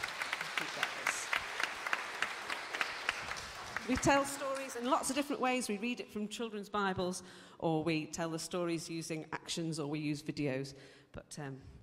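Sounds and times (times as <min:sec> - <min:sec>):
small group clapping: 0:00.0 - 0:05.5
speech: 0:03.9 - 0:11.8.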